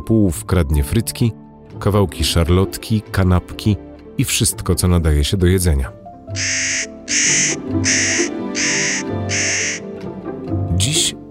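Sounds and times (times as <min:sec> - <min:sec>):
soft low music: 0:00.0 - 0:11.2
speech: 0:00.1 - 0:08.7
spotted nutcracker giving harsh rasping calls: 0:06.3 - 0:10.0.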